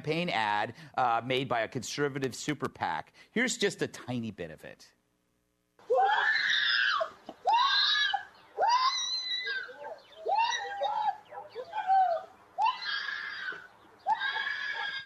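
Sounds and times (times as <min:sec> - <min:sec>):
speech: 0:00.0 - 0:05.0
woman screaming in anguish on a street: 0:05.8 - 0:15.0.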